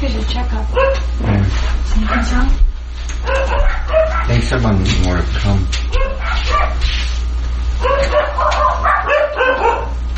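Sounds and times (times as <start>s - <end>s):
speech: 0.0s - 7.0s
dog barking and yipping: 0.7s - 1.1s, 3.2s - 4.5s, 5.9s - 6.9s, 7.8s - 10.0s.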